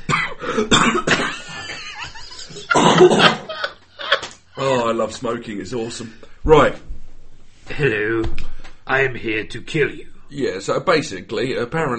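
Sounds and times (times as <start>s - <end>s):
harsh fit of coughing: 0.0s - 1.8s, 2.7s - 3.5s
speech: 0.6s - 1.2s, 3.0s - 3.4s, 4.9s - 6.9s, 7.8s - 11.9s
laughter: 1.2s - 4.9s.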